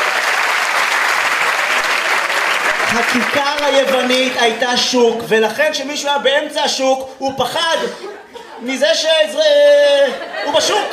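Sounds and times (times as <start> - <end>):
audience applause: 0.0 - 4.6
speech: 2.9 - 10.9
laughter: 7.7 - 10.9.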